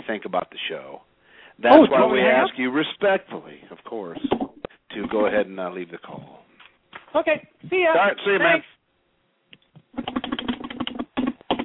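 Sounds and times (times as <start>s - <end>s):
speech: 0.1s - 6.4s, 7.1s - 8.8s, 10.0s - 10.2s
typing on a computer keyboard: 9.9s - 11.6s.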